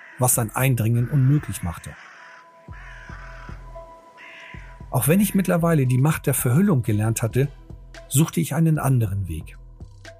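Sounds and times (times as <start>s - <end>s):
ravens cawing harshly: 0.0s - 5.0s
speech: 0.2s - 2.1s, 5.0s - 9.6s.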